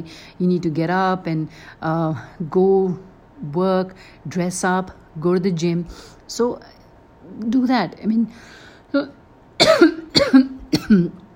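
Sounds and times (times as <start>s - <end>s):
speech: 0.0s - 11.2s
person coughing: 9.6s - 11.2s.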